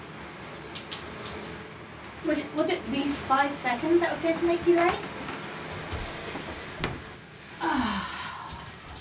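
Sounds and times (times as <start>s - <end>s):
shower water running with a hiss of spray: 0.0s - 8.9s
speech: 2.2s - 5.1s.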